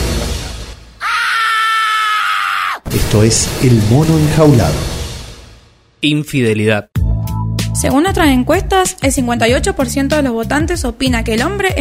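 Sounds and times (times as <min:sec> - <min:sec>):
person screaming: 0:01.0 - 0:02.9
speech: 0:03.1 - 0:04.9, 0:06.0 - 0:07.0, 0:07.8 - 0:11.7.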